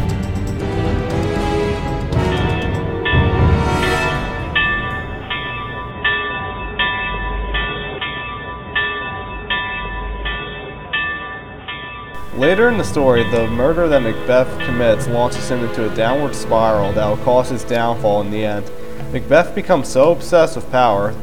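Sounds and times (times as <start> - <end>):
low rumbling background: 0.0 - 5.9, 12.2 - 21.2
alarm bell clanging: 1.9 - 21.2
speech: 12.4 - 21.2.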